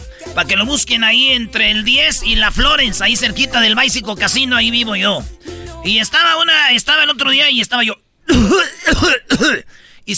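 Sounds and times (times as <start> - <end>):
speech: 0.4 - 10.1
loud raspy hacking coughs: 8.3 - 9.8.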